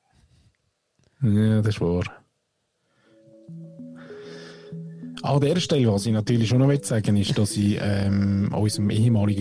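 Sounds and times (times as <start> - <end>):
speech: 1.2 - 2.2, 5.3 - 9.4
music with sustained tonal melody over held chords: 3.1 - 9.4.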